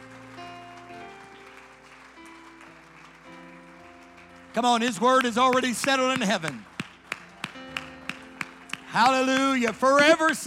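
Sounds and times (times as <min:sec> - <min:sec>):
audience clapping hands: 0:00.0 - 0:10.4
sustained keyboard chords: 0:00.0 - 0:10.4
speech: 0:04.6 - 0:06.7, 0:08.9 - 0:10.4.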